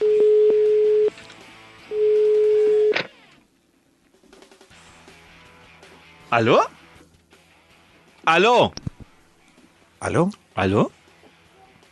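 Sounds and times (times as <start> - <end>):
telephone line tones while calling a number: 0.0 - 1.1, 1.9 - 3.1
speech: 6.3 - 6.8, 8.2 - 8.8, 10.0 - 11.0.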